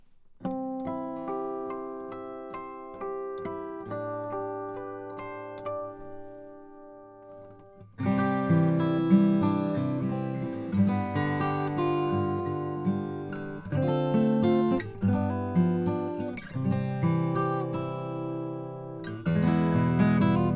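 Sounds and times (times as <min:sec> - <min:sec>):
OM 42 acoustic guitar of Brazilian rosewood: 0:00.0 - 0:20.5.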